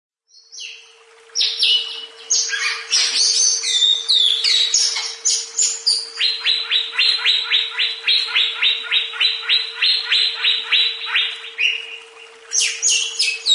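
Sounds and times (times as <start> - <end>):
continuous hum: 0.3 - 13.5
leafbird delivering a long lively song: 0.3 - 13.5.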